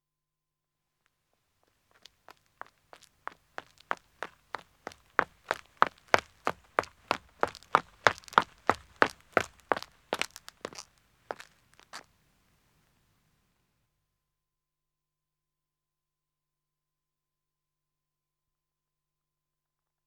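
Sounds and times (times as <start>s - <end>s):
man running footsteps approaching on a country road: 1.9s - 12.1s.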